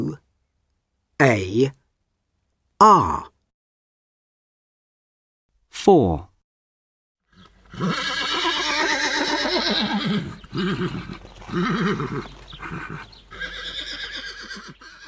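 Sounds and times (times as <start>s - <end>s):
speech: 1.2s - 1.8s, 2.8s - 3.3s, 5.8s - 6.3s, 7.8s - 8.2s, 9.7s - 13.6s
horse whinnying and snorting: 7.4s - 15.0s.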